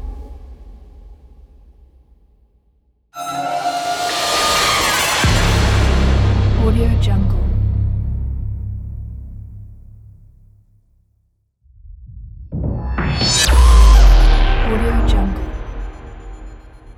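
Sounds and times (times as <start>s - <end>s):
cinematic sound effect: 3.2s - 10.2s, 12.7s - 16.9s.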